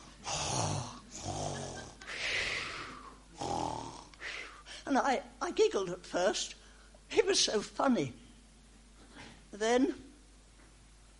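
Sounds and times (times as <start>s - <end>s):
person snoring: 0.0s - 4.6s
speech: 4.9s - 8.2s, 9.5s - 10.1s.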